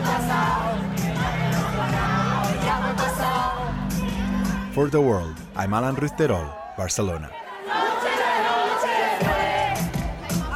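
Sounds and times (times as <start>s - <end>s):
large concert crowd singing along at a festival: 0.0s - 4.7s, 7.3s - 10.5s
speech: 4.8s - 7.8s.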